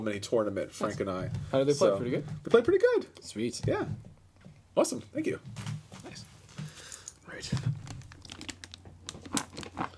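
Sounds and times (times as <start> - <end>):
speech: 0.0 - 4.1, 4.8 - 6.3, 7.4 - 7.8
red very shiny wrapping paper crinkling on a heavy gift: 7.3 - 9.9.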